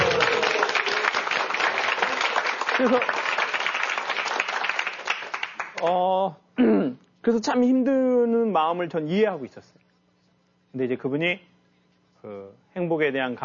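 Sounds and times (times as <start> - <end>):
audience applause: 0.0 - 5.8
speech: 2.8 - 3.2, 5.8 - 9.8, 10.7 - 11.5, 12.2 - 13.4.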